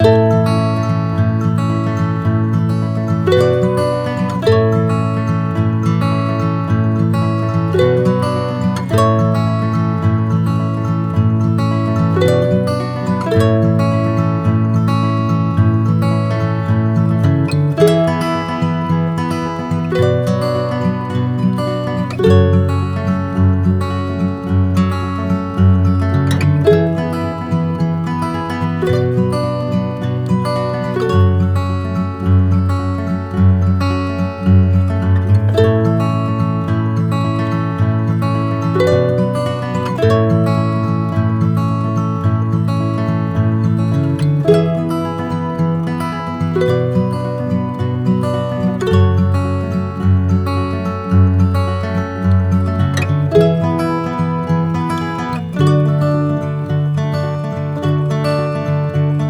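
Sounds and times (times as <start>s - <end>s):
acoustic loop: 0.0s - 59.2s.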